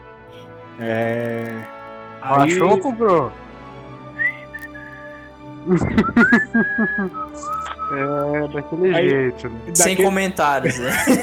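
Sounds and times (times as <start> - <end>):
speech: 0.8 - 3.4, 5.6 - 11.2
person whistling a soft high note: 4.2 - 8.2
person laughing: 5.6 - 7.8, 9.9 - 11.2.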